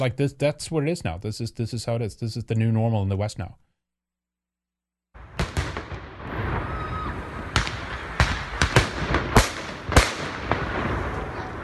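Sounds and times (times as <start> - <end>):
speech: 0.0 - 3.7
fireworks exploding in celebration of Ramadan: 5.2 - 11.6.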